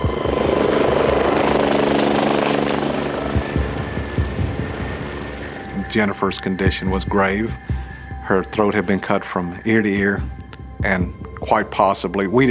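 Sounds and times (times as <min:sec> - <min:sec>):
life flight medical helicopter rotor thudding and engine roaring: 0:00.0 - 0:07.7
speech: 0:06.0 - 0:07.7, 0:08.3 - 0:12.4.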